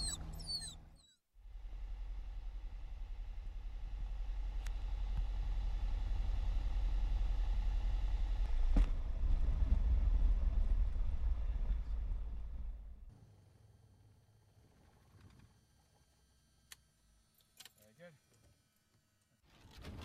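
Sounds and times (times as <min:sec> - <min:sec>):
Arrow light aircraft engine droning on final approach to runway 1 at Rutland County: 0:00.0 - 0:13.2.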